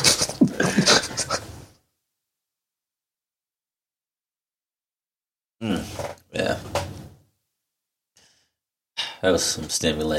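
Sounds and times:
person panting with heavy rapid breathing: 0.0s - 1.5s
speech: 5.6s - 6.9s, 9.2s - 10.1s.

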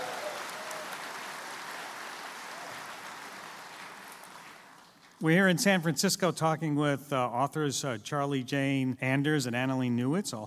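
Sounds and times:
live audience crowd applause: 0.0s - 5.1s
speech: 5.2s - 10.4s.

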